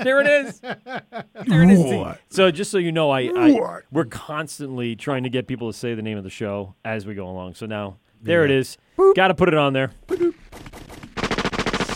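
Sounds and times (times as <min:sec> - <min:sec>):
laughter: 0:00.0 - 0:02.0
speech: 0:00.0 - 0:10.4
automatic weapon gunfire sound effect: 0:10.6 - 0:11.9.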